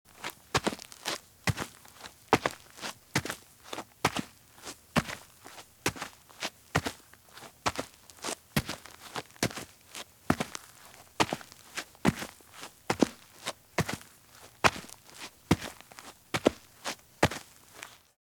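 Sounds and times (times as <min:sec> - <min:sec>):
running shoes walking at medium pace on dirt: 0:00.1 - 0:18.1.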